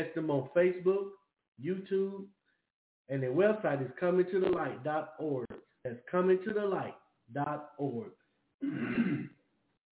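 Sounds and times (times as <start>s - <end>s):
speech: 0.0s - 2.4s, 3.1s - 9.4s
throat clearing: 8.6s - 9.4s.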